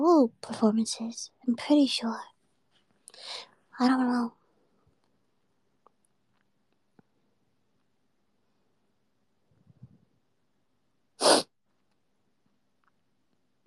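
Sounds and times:
speech: 0:00.0 - 0:02.3, 0:03.1 - 0:04.4
person sneezing: 0:11.2 - 0:11.5
person sniffling in the morning: 0:11.2 - 0:11.5.

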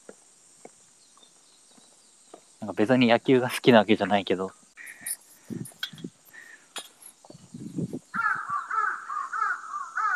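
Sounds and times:
speech: 0:02.6 - 0:04.6
crow cawing: 0:04.8 - 0:05.7, 0:06.3 - 0:06.7, 0:08.2 - 0:10.1.

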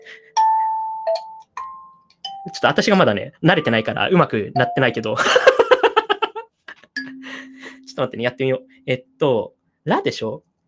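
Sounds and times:
kalimba notes: 0:00.0 - 0:02.9, 0:03.5 - 0:05.1, 0:07.0 - 0:09.2
speech: 0:02.4 - 0:05.5, 0:08.0 - 0:10.5
laughter: 0:05.2 - 0:06.8.

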